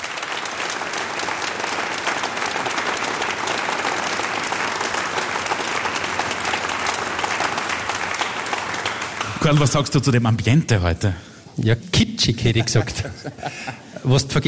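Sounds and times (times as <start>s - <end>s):
large audience applause: 0.0s - 9.9s
speech: 9.5s - 14.4s
laughter: 12.3s - 14.3s.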